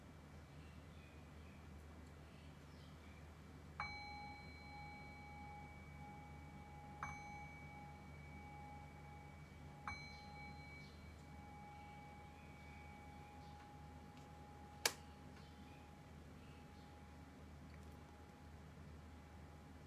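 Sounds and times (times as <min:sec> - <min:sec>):
low steady hum: 0:00.0 - 0:19.8
meditation bell being struck: 0:03.8 - 0:14.8.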